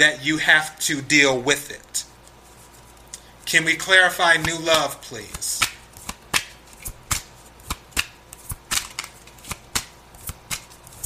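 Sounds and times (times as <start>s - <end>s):
speech: 0.0s - 2.1s, 3.5s - 5.6s
tarot cards shuffled by hand: 4.3s - 11.0s.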